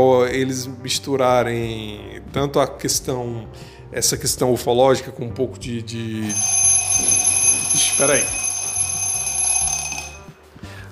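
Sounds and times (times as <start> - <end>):
speech: 0.0 - 7.1, 7.7 - 8.4
alarm clock ringing with electronic beeping: 6.2 - 10.4.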